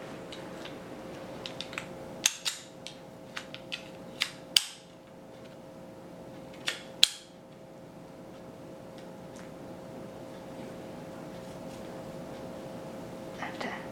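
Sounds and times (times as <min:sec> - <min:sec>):
steady low hum: 0:00.0 - 0:13.8
small folding cane sections with elastic band locking together: 0:01.4 - 0:04.9.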